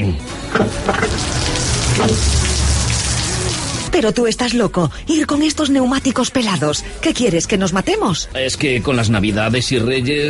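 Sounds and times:
speech: 0.1s - 1.4s, 2.0s - 2.4s, 4.0s - 10.2s
heavy rain pouring: 0.8s - 3.9s.

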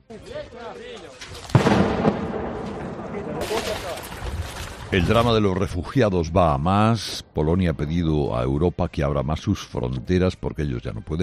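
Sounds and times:
speech: 0.1s - 11.2s
sustained rumbling and cracking: 1.4s - 5.8s
gunfire bursts in a war zone: 1.6s - 4.0s.

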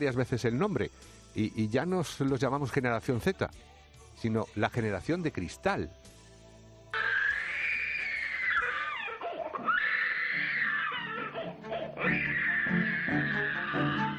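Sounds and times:
speech: 0.0s - 6.2s
small child screaming in a tantrum: 7.0s - 14.1s.

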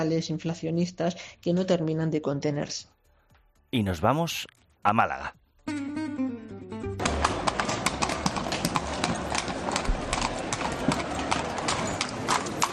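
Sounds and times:
speech: 0.0s - 3.0s, 3.7s - 5.4s
hooves of horses pulling carriages clip-clopping on hard pavement: 7.0s - 12.7s.

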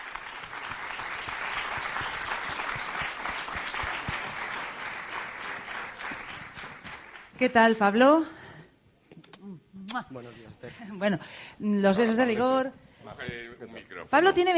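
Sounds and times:
audience applause: 0.0s - 7.4s
speech: 7.4s - 8.4s, 10.0s - 14.5s.

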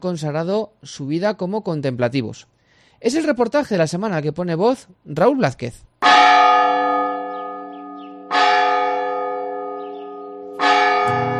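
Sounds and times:
speech: 0.0s - 6.4s
Carmelite convent bells tolling for the prayer of the hours: 6.0s - 11.3s.

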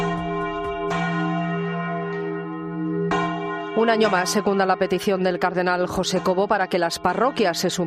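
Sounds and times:
church bells ringing: 0.0s - 7.8s
speech: 3.8s - 7.8s.

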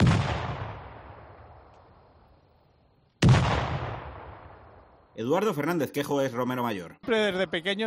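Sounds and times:
firework rockets exploding at dawn: 0.0s - 1.7s, 3.2s - 5.0s
speech: 5.2s - 7.8s.

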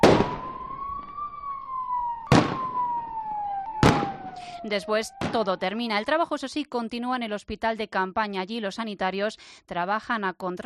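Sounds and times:
gunshots during a police assault drill: 0.0s - 0.6s, 2.3s - 3.0s, 3.8s - 4.5s
siren wailing: 0.0s - 6.6s
speech: 4.6s - 10.6s.

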